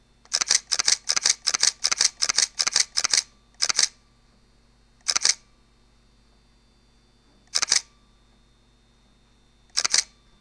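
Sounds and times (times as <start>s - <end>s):
camera shutter continuous shooting: 0.3s - 4.0s, 5.0s - 5.5s, 7.5s - 7.9s, 9.7s - 10.2s.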